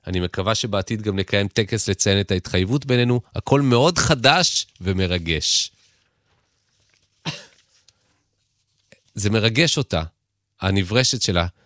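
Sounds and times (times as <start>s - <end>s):
speech: 0.1s - 5.8s, 7.2s - 7.4s, 9.2s - 11.6s
man coughing: 7.2s - 7.7s.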